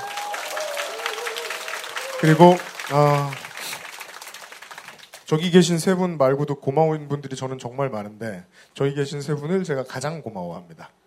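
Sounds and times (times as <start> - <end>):
crowd applauding: 0.0 - 5.5
speech: 2.2 - 3.4, 5.3 - 11.0.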